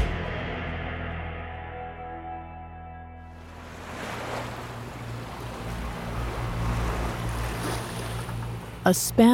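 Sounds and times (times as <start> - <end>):
low rumbling drone: 0.1 - 9.1
ocean waves washing onto a beach in Huelva Spain at sunrise: 3.3 - 9.2
speech: 8.9 - 9.3.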